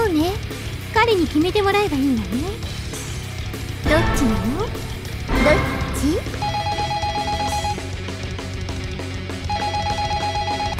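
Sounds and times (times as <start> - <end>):
music: 0.0 - 10.7
speech: 1.0 - 2.8, 3.8 - 6.5
telephone ringing with trilling tones: 6.4 - 7.9, 9.4 - 10.7.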